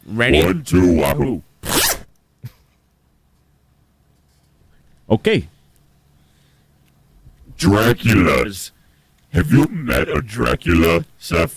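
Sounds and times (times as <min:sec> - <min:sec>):
speech: 0:00.1 - 0:01.5, 0:05.1 - 0:05.5, 0:07.6 - 0:11.5
zipper being opened: 0:01.6 - 0:02.1.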